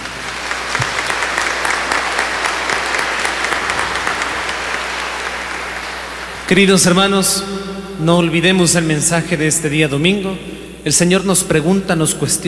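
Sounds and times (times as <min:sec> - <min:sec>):
church audience applauding at a Sunday service: 0:00.0 - 0:06.9
speech: 0:06.5 - 0:12.4.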